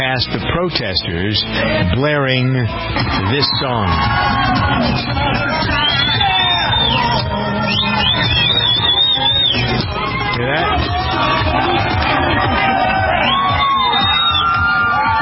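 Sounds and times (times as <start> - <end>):
speech: 0.0 - 6.3
crowd babble: 0.0 - 15.1
large crowd cheering outdoors: 3.0 - 15.1
high whoops and shouts: 3.3 - 11.5, 12.2 - 15.1.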